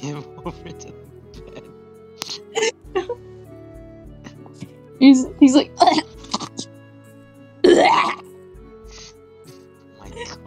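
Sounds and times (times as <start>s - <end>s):
speech: 0.0s - 1.6s, 2.6s - 3.2s, 5.0s - 6.0s
harsh wet hacking cough bringing up phlegm: 5.8s - 6.7s, 7.6s - 8.2s.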